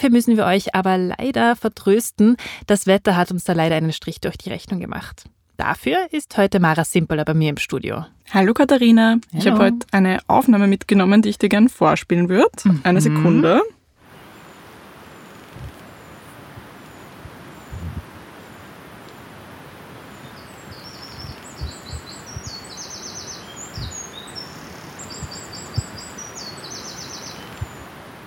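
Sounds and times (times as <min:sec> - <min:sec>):
speech: 0:00.0 - 0:13.8
babbling brook: 0:09.4 - 0:09.8, 0:12.7 - 0:13.7
crickets chirping: 0:14.0 - 0:28.2
birdsong: 0:14.4 - 0:18.1, 0:20.0 - 0:28.0.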